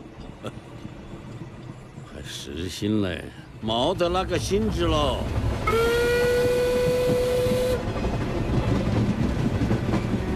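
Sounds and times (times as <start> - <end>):
train wheels rumbling on rails: 0.0 - 10.3
speech: 0.4 - 0.7, 2.2 - 5.9
sustained tonal train whistle: 5.6 - 7.9.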